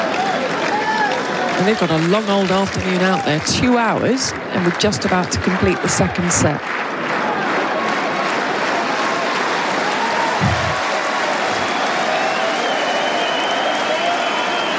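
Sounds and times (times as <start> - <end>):
large crowd at a tennis match cheering and applauding: 0.0 - 14.7
speech: 1.6 - 6.9
low thumps: 10.4 - 10.8.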